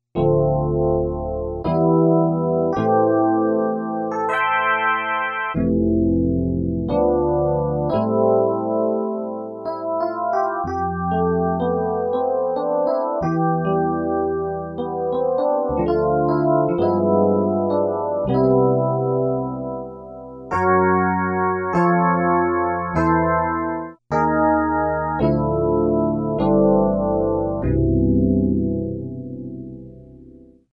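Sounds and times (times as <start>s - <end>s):
Casio CSM-1 electric piano tones: 0.2s - 30.4s.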